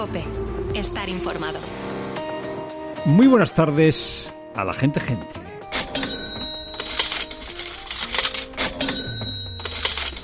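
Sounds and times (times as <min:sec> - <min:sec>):
speech: 0:00.0 - 0:02.0, 0:03.0 - 0:05.5
clatter of cash register keys: 0:05.7 - 0:10.2
cash register ringing with bright metallic chimes: 0:05.8 - 0:10.2.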